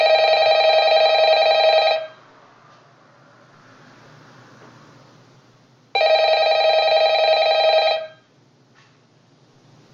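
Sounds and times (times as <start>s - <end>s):
phone ringing: 0.0s - 2.2s, 5.9s - 8.3s.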